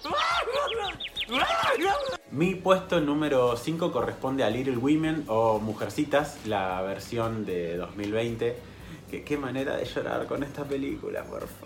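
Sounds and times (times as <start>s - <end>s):
small bird chirping: 0.6s - 2.2s
speech: 2.4s - 11.6s.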